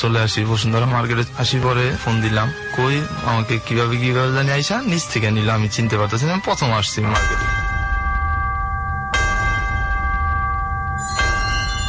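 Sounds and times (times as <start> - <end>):
speech: 0.0 - 7.6
bell marking a break in a radio programme: 7.1 - 11.8.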